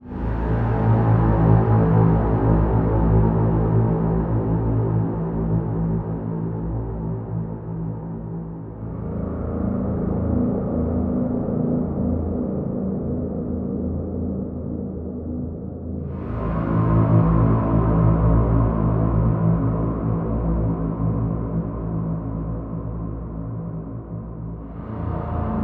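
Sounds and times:
doom ambience drones: 0:00.0 - 0:25.6.

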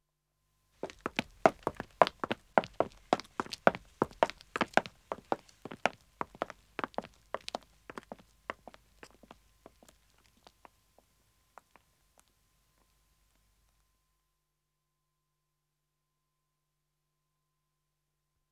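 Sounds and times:
two men walking away on pavement: 0:00.8 - 0:12.3.

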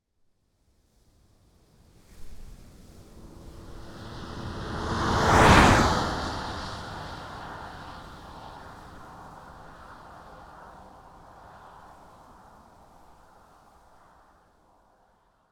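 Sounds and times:
Volkswagen Caravelle T5 2.0 TDI van passing by at 120 kmph: 0:02.6 - 0:10.9.

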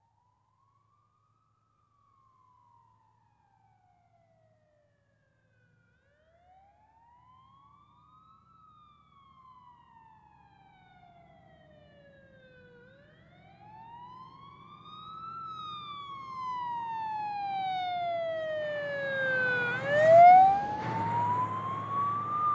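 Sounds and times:
fire engine passing right to left with wail siren: 0:07.2 - 0:22.5.

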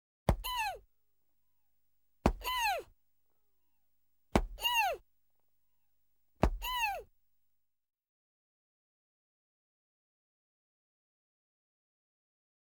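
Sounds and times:
punches to the stomach: 0:00.3 - 0:00.8, 0:02.3 - 0:02.8, 0:04.4 - 0:05.0, 0:06.4 - 0:07.0.

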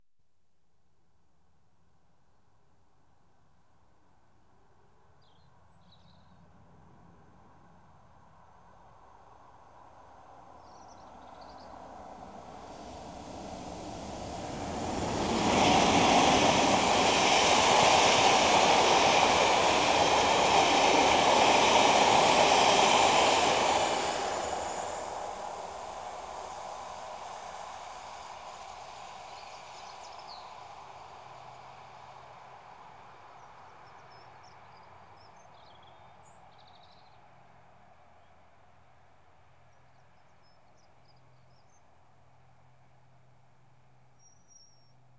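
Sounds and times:
diesel express trains passing: 0:11.0 - 0:33.1.

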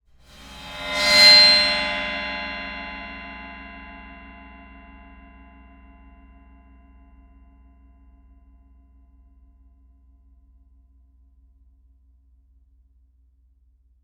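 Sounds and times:
bowed cymbal with highs and mids: 0:00.2 - 0:05.5.

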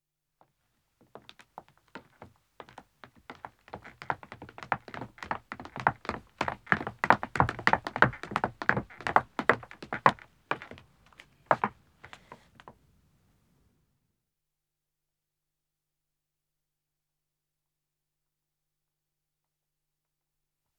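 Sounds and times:
footsteps descending wooden stairs: 0:03.3 - 0:10.8.

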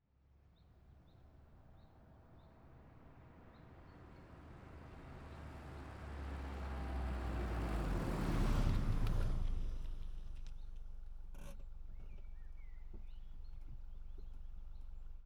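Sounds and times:
2003 VW Polo driving up fast and stopping: 0:05.4 - 0:15.2.

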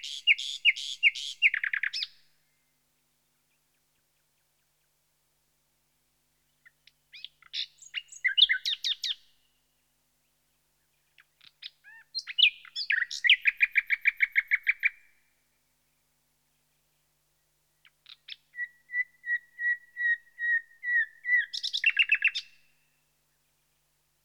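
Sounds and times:
common nightingale singing: 0:00.0 - 0:02.2, 0:06.6 - 0:09.4, 0:11.2 - 0:15.1, 0:17.8 - 0:22.8.

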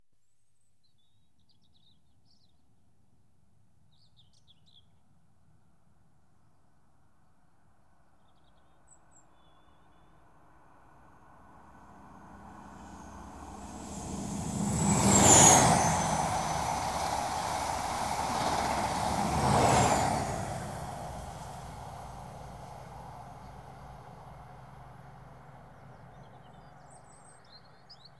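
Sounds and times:
Inter City 125 trains passing: 0:11.6 - 0:26.5.

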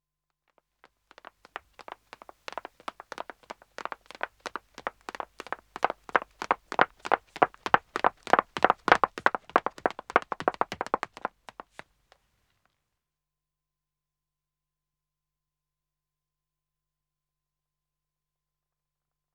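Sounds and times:
two women running footsteps on wood: 0:00.8 - 0:11.8.

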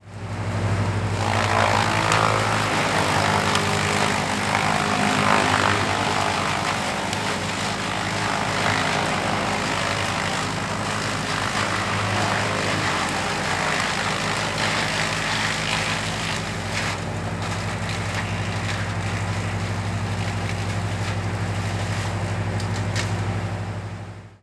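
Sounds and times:
woodchipper: 0:00.0 - 0:24.4.

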